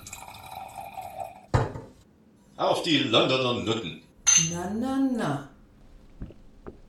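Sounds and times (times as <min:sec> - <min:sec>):
drink pouring into a glass: 0:00.0 - 0:01.5
speech: 0:02.6 - 0:05.5.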